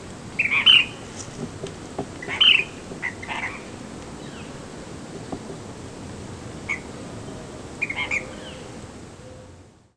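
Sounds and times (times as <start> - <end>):
soft background hiss: 0.0 - 9.9
ash-throated flycatcher calls: 0.4 - 1.3, 2.2 - 4.6, 6.6 - 9.6.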